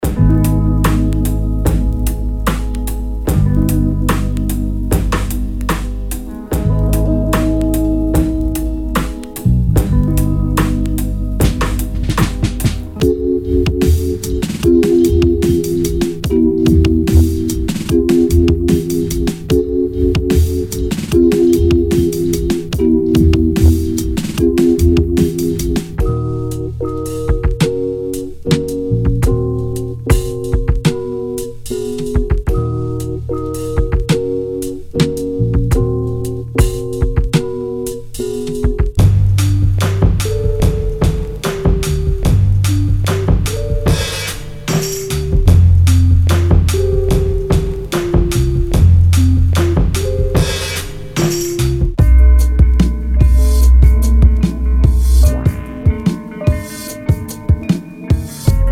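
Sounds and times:
vintage hip hop drum breaks: 0.0 - 58.7.

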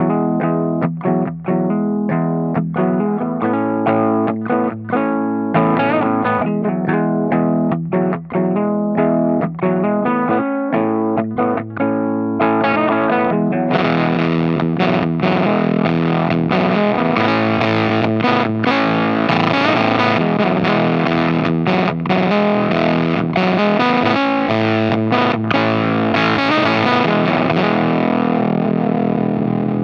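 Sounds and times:
fuzzed guitar: 0.0 - 29.8.

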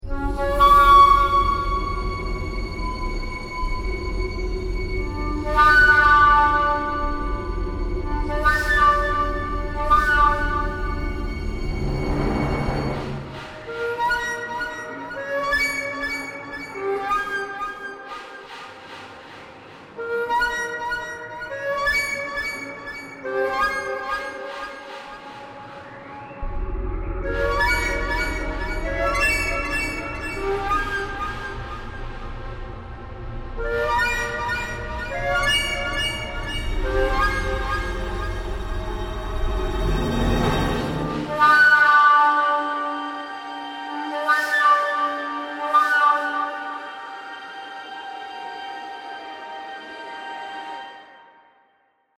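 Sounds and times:
flute extended techniques: 0.0 - 51.3.

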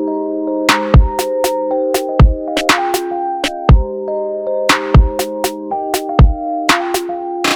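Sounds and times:
beat with tape wobble: 0.7 - 3.9, 4.7 - 7.5.

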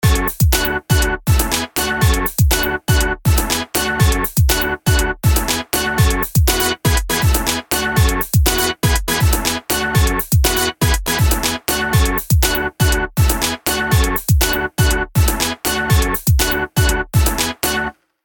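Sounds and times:
dry melody: 0.0 - 18.0.

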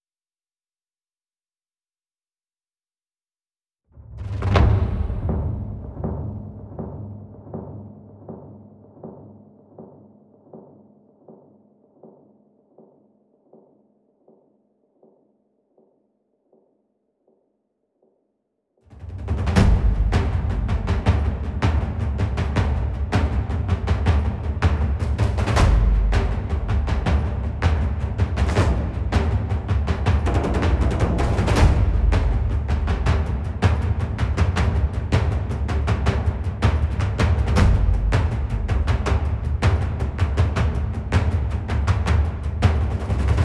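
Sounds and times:
low drums: 4.2 - 9.9, 19.0 - 43.4.

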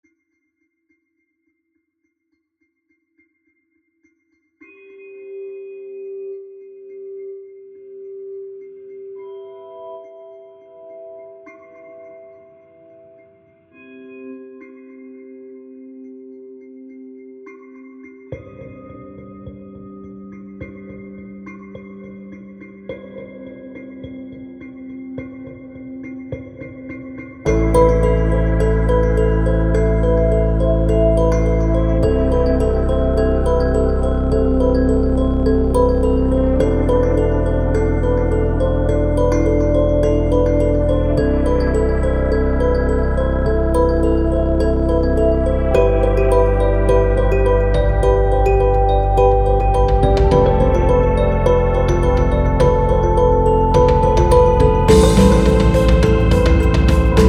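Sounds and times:
dark kalimba: 18.3 - 57.2.

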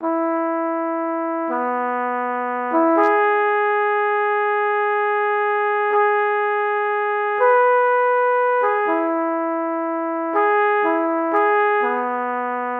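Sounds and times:
flugelhorn playing legato: 0.0 - 12.7.

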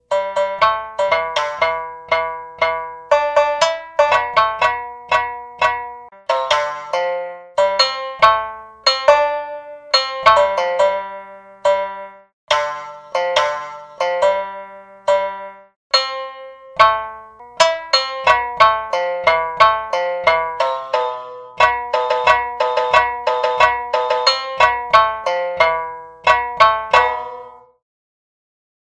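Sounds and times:
shamisen hajiki left-hand plucking: 0.0 - 27.8.

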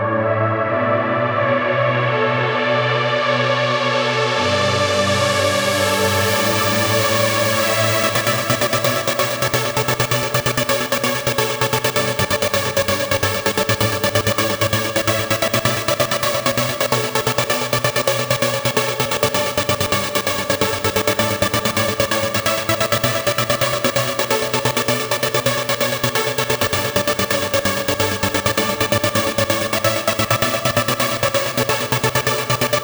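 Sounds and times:
gated trance synth pad: 0.2 - 32.8.

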